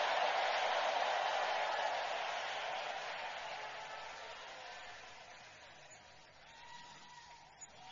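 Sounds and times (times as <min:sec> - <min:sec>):
church audience clapping: 0:00.0 - 0:06.3.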